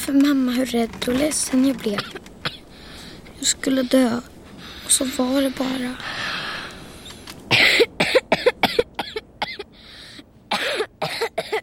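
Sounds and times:
speech: 0:00.1 - 0:02.3, 0:03.4 - 0:04.3, 0:04.9 - 0:06.4
heavy coughing: 0:01.9 - 0:02.7, 0:07.5 - 0:09.7, 0:10.5 - 0:11.6.

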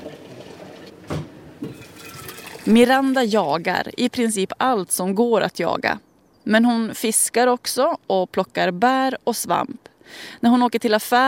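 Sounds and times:
moose goulash soup pouring into a food thermos: 0:01.7 - 0:03.6
speech: 0:02.6 - 0:11.2.

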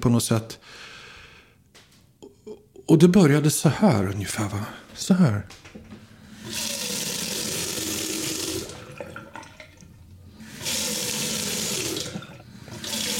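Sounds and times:
speech: 0:00.0 - 0:00.9, 0:02.9 - 0:05.8
kitchen tap water gushing into a sink: 0:06.3 - 0:13.1.

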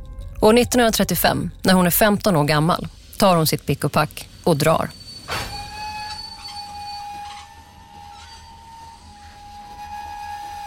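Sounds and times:
low rumble of a slowing locomotive: 0:00.0 - 0:10.6
speech: 0:00.4 - 0:05.0
locomotive brakes squealing as the train stops: 0:04.2 - 0:10.6
metallic ringing tones: 0:04.2 - 0:10.6.

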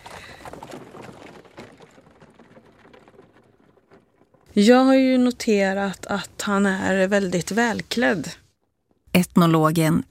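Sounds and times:
horse hooves of a horse-drawn carriage clip-clopping: 0:00.0 - 0:07.7
horse-drawn carriage rattling rumble: 0:00.0 - 0:09.0
speech: 0:04.6 - 0:08.4, 0:09.3 - 0:10.0.

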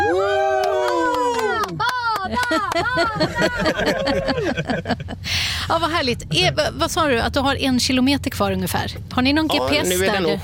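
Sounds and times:
children cheering and whooping together in a car: 0:00.0 - 0:04.5
scattered clapping: 0:00.3 - 0:04.2
laughter: 0:01.8 - 0:05.3
speech: 0:02.5 - 0:10.4.

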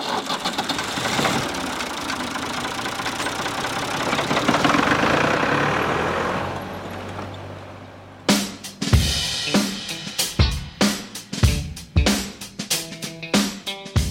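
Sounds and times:
heavy tractor engine roaring while pulling a competition sled: 0:00.0 - 0:08.7
sharp rhythmic punchy bursts: 0:08.3 - 0:14.0.

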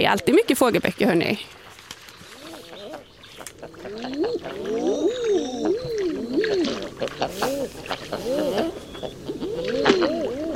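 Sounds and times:
speech: 0:00.0 - 0:01.6, 0:07.0 - 0:10.2
soft water splashes: 0:00.0 - 0:10.5
male common eiders crooning ah-ooo calls: 0:02.2 - 0:10.5.

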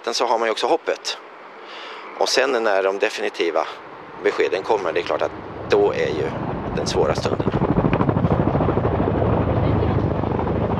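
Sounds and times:
speech: 0:00.0 - 0:07.6
helicopter rotor chopping: 0:03.2 - 0:10.7.

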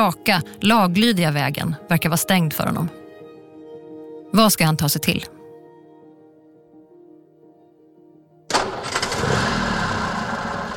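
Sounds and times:
speech: 0:00.0 - 0:03.0, 0:04.3 - 0:05.4
eight-cylinder Ford motor car engine cranking, starting and idling: 0:08.5 - 0:10.7.

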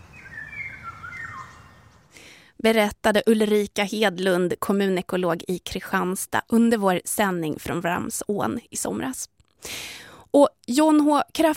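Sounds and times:
rare yellow bird with black wings singing: 0:00.0 - 0:02.1
speech: 0:02.6 - 0:11.5.

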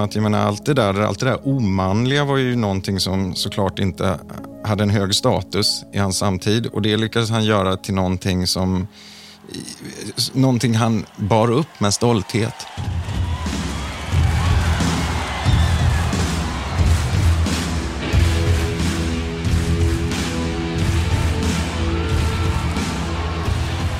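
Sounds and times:
speech: 0:00.0 - 0:13.0
huge concert audience clapping in time: 0:10.1 - 0:23.9
huge concert audience stomping in time: 0:12.6 - 0:23.9.

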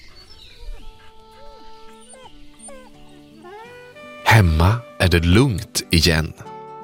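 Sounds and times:
frightened dog whimpering: 0:00.0 - 0:04.1
speech: 0:04.4 - 0:06.5.

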